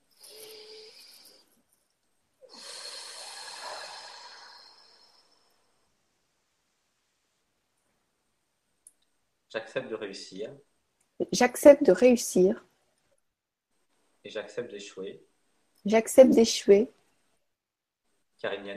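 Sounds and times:
person breathing deeply as a breathing exercise: 0:00.1 - 0:01.4, 0:02.4 - 0:05.8
speech: 0:09.5 - 0:12.7, 0:14.2 - 0:17.0, 0:18.4 - 0:18.7.

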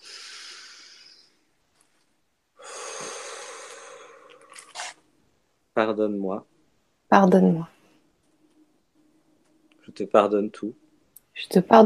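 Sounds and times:
soft airy breaths during a spoken guided ritual: 0:00.0 - 0:04.7, 0:07.6 - 0:10.0
speech: 0:05.8 - 0:06.5, 0:07.1 - 0:07.7, 0:10.0 - 0:10.8, 0:11.4 - 0:11.8.

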